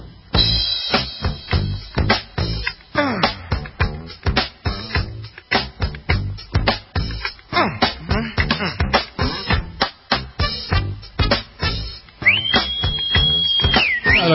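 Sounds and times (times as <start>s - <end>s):
rhythmic vocals: 0.4s - 14.3s
wolf whistle catcall: 12.2s - 14.3s.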